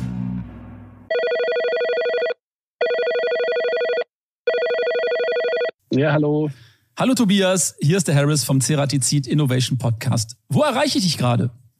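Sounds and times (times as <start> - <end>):
outgoing phone call electronic ringing tone: 1.1 - 5.8
speech: 5.9 - 11.7.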